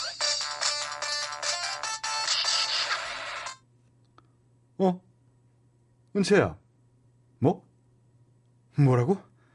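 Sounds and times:
mobile phone ringtone with a bright electronic melody: 0.1s - 2.7s
speech: 4.8s - 5.1s, 6.2s - 6.6s, 7.4s - 7.7s, 8.8s - 9.3s.

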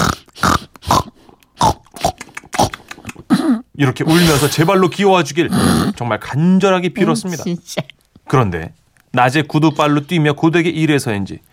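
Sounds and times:
pig oinking and grunting: 0.0s - 6.0s
speech: 3.8s - 11.5s.

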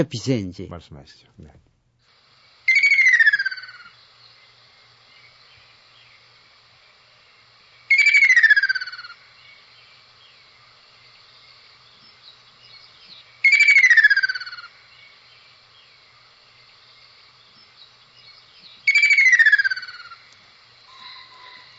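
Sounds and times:
speech: 0.0s - 1.7s
red-plumaged summer waterside bird giving a trilling call: 2.7s - 3.9s, 7.9s - 9.2s, 13.4s - 14.8s, 18.8s - 20.3s, 20.9s - 21.7s.

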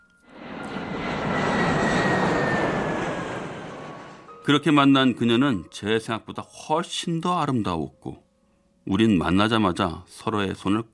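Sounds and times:
propeller airplane engine droning overhead: 0.2s - 4.5s
speech: 4.5s - 8.2s, 8.8s - 10.9s.

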